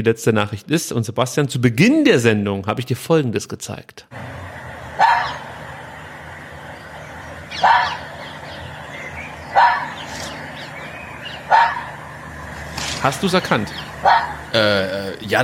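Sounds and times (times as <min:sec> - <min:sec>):
speech: 0:00.0 - 0:05.4, 0:13.0 - 0:15.4
faint steady outdoor hiss: 0:00.1 - 0:15.4
red fox barking: 0:04.9 - 0:05.9, 0:07.2 - 0:12.3, 0:13.7 - 0:14.6.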